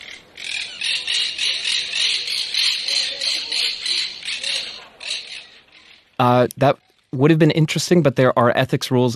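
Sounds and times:
monk parakeet squawks: 0.0s - 6.1s
speech: 6.2s - 9.1s.

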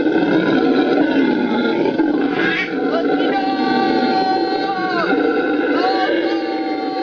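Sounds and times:
howler monkeys roaring in a droning chorus: 0.0s - 7.0s
human voice screaming in imitation of howler monkeys: 1.1s - 7.0s.

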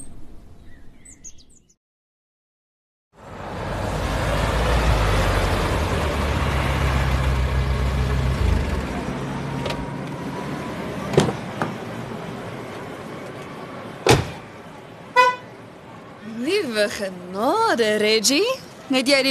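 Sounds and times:
brand-new car engine rumbling: 3.2s - 16.1s
car horn toot: 15.1s - 15.5s
speech: 16.8s - 19.2s.

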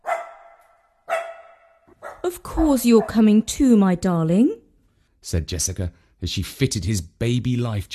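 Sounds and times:
small dog barking by the edge of a loch: 0.0s - 2.3s
speech: 2.2s - 4.6s, 5.2s - 7.9s.

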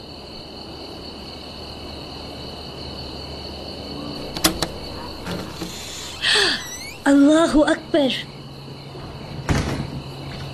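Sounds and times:
steady low hum: 4.1s - 7.4s
door closing thud: 4.2s - 7.1s
speech: 7.1s - 8.3s.

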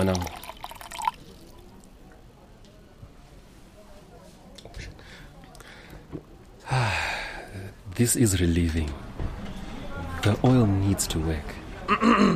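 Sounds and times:
speech: 0.0s - 0.4s, 8.0s - 9.1s, 10.2s - 12.3s
cold water pouring into a cup: 0.0s - 1.8s.

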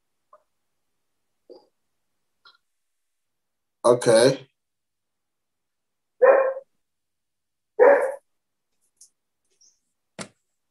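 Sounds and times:
speech: 3.9s - 4.5s
German Shepherd barking: 6.2s - 6.7s, 7.8s - 8.2s.

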